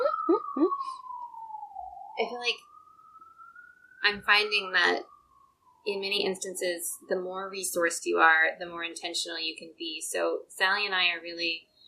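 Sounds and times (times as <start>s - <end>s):
emergency vehicle siren passing outside: 0.0s - 9.0s
speech: 2.2s - 2.7s, 4.0s - 5.1s, 5.8s - 11.7s.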